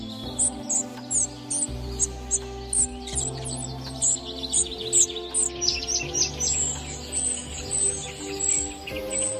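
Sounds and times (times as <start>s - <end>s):
spotted flycatcher quiet song: 0.0s - 9.3s
steady low tonal hum: 0.0s - 9.3s.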